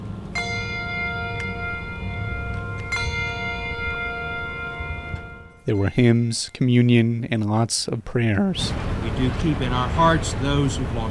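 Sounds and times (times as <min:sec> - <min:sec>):
low rumble: 0:00.0 - 0:11.0
hand bells rung to start a church service in a parking lot: 0:00.4 - 0:06.9
speech: 0:05.7 - 0:11.0.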